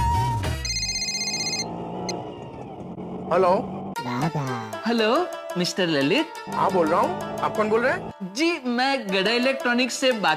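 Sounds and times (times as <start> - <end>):
phone ringing over speakerphone during a call: 0.6 - 1.7
speech: 3.3 - 10.3.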